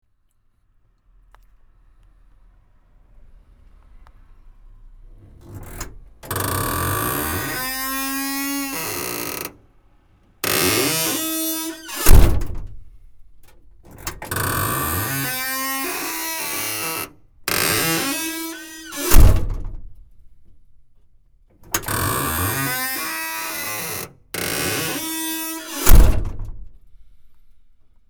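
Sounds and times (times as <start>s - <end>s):
door creaking: 5.2s - 9.7s, 10.4s - 12.9s, 13.5s - 20.0s, 21.6s - 26.7s.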